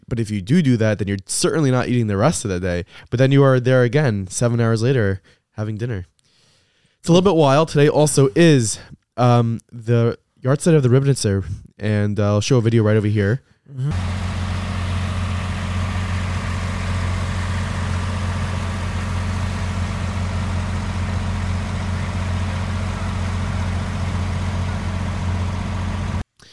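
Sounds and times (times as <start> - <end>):
speech: 0.1 - 6.1, 7.0 - 14.3
line of cars idling in traffic: 13.9 - 26.2.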